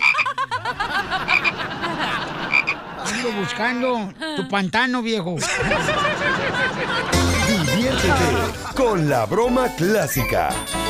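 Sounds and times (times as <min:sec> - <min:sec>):
frog croaking in throaty rattling croaks: 0:00.0 - 0:00.3, 0:01.3 - 0:01.6, 0:02.5 - 0:02.8
laughter: 0:00.0 - 0:09.2
speech: 0:03.4 - 0:10.8.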